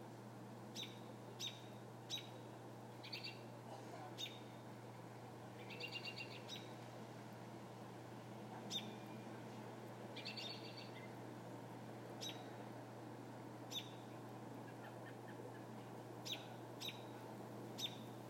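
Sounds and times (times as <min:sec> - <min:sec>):
low electrical hum: 0:00.0 - 0:18.2
American robin calls: 0:00.7 - 0:04.6, 0:05.6 - 0:06.8, 0:08.6 - 0:09.4, 0:10.1 - 0:11.2, 0:12.2 - 0:12.6, 0:13.7 - 0:18.2.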